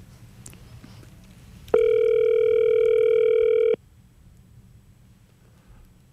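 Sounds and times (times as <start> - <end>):
low hum: 0.0 - 6.1
electronic telephone ringback tone from an outgoing phone call in a studio in Sydney: 1.8 - 3.8.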